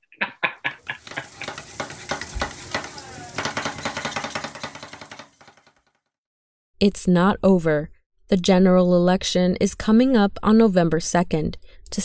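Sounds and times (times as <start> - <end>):
laughter: 0.0 - 1.8
steady sizzling on a halal cart griddle: 0.8 - 5.8
chicken being chopped on a halal cart griddle in New York City: 1.0 - 5.9
speech: 6.8 - 12.0.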